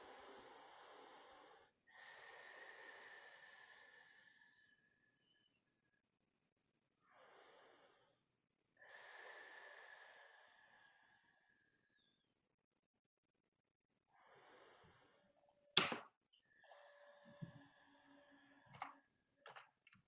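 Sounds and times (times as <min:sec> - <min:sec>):
slow hissing exhales during a breathing and stretching exercise: 0:00.0 - 0:05.6, 0:07.0 - 0:12.4, 0:14.1 - 0:15.4, 0:16.4 - 0:19.7.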